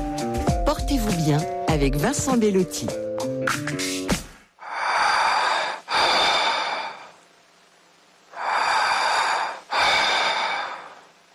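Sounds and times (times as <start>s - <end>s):
speech: 0.7s - 4.2s
deep breathing: 4.6s - 7.3s, 8.3s - 11.3s.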